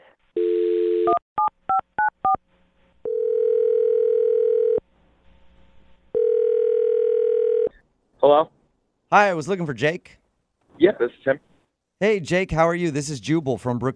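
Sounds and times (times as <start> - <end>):
telephone dial tone: 0.4 - 1.2, 3.1 - 4.8, 6.2 - 7.7
long loud phone ringing tones: 3.0 - 4.8, 6.1 - 7.8
speech: 8.3 - 10.2, 10.8 - 13.9.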